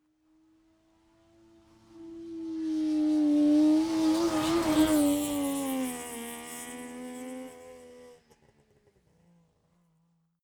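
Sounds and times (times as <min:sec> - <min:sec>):
Saab 92 car passing right to left outside: 0:02.0 - 0:07.9.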